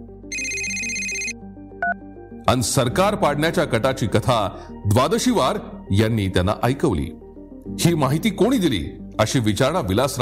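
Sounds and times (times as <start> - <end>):
low melody: 0.0 - 10.2
phone ringtone trill over a low melody: 0.3 - 2.0
speech: 2.4 - 10.2.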